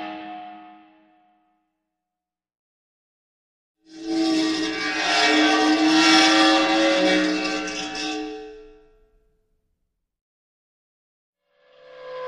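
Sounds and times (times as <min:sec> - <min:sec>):
dry ice on metal making an eerie sound: 0:03.9 - 0:08.5.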